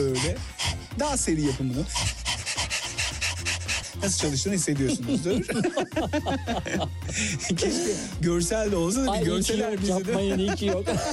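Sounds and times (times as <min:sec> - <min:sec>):
speech: 0:00.0 - 0:02.2, 0:04.0 - 0:11.1
person imitating a dog panting as a breathing exercise: 0:00.0 - 0:05.1
laughter: 0:03.9 - 0:08.1, 0:09.0 - 0:11.1.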